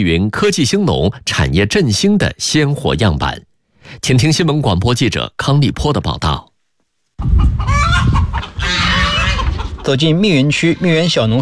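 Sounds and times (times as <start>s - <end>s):
speech: 0.0s - 6.5s, 9.8s - 11.3s
chickens clucking and crowing on a cooperative farm: 7.2s - 11.1s
geese honking on a farm: 7.6s - 11.1s.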